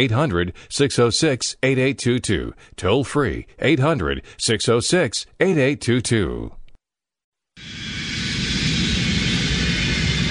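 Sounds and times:
speech: 0.0s - 6.6s
airplane engine drone in cabin in flight: 7.6s - 10.3s.

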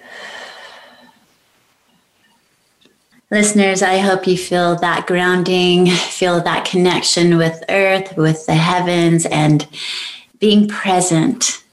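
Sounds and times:
deep breath released during a guided grounding exercise: 0.0s - 1.2s, 9.8s - 10.3s
speech: 3.3s - 11.6s.

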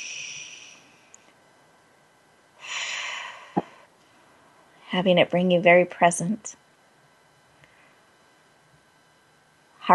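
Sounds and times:
deep belly breathing in through the nose and out through the mouth: 0.0s - 1.0s, 2.6s - 3.9s
speech: 4.9s - 6.6s.

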